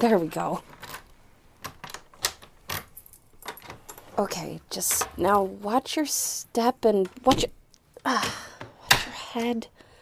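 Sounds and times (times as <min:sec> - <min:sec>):
speech: 0:00.0 - 0:00.8, 0:04.2 - 0:08.6, 0:09.3 - 0:09.8
bunch of about ten keys jingling as someone searches for a door key: 0:02.7 - 0:04.0.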